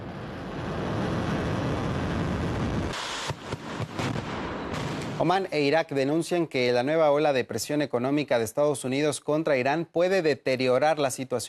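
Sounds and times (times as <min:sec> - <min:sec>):
ballistic missile launch roar from a mobile launch platform: 0:00.0 - 0:05.5
speech: 0:05.2 - 0:11.4.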